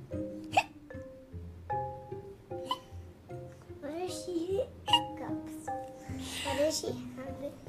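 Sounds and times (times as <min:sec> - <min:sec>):
light music with soft pitched tones: 0:00.0 - 0:07.6
voice imitating hiccups: 0:00.4 - 0:00.8, 0:02.6 - 0:02.9, 0:04.9 - 0:05.2.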